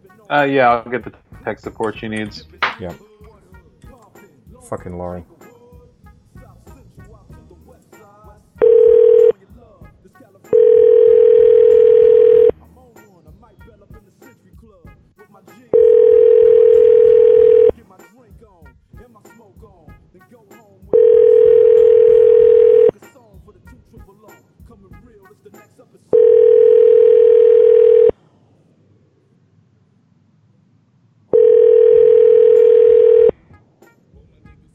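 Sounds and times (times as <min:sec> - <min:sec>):
speech: 0:00.3 - 0:03.1, 0:04.7 - 0:05.3
phone ringback tones on an outgoing call: 0:08.6 - 0:09.4, 0:10.6 - 0:12.6, 0:15.8 - 0:17.7, 0:20.9 - 0:22.9, 0:26.2 - 0:28.1, 0:31.3 - 0:33.3.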